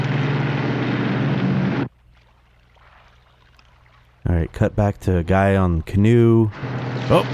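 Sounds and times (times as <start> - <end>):
speedboat motor droning on water: 0.0 - 2.7, 6.4 - 7.3
rushing water: 0.0 - 4.3, 6.5 - 7.3
speech: 4.4 - 7.3.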